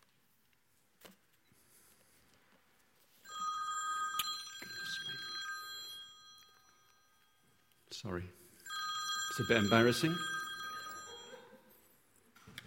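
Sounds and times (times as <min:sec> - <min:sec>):
telephone ringing with an electronic trill: 0:03.2 - 0:07.8, 0:08.4 - 0:11.8
speech: 0:08.0 - 0:08.4, 0:09.4 - 0:10.4.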